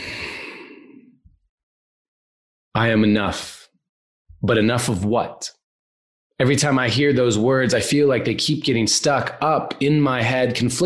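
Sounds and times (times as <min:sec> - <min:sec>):
long deep breathy exhale sigh: 0:00.0 - 0:01.1
speech: 0:02.8 - 0:03.6, 0:04.4 - 0:05.6, 0:06.4 - 0:10.8.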